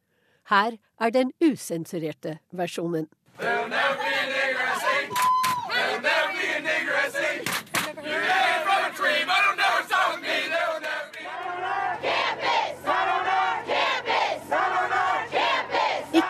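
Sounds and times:
speech: 0.5s - 4.4s
crowd of students chanting at protest: 3.4s - 16.2s.

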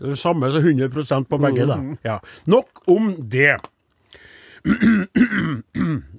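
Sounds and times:
speech: 0.0s - 6.1s
person with a slightly hoarse throat clearing it: 4.6s - 6.1s.

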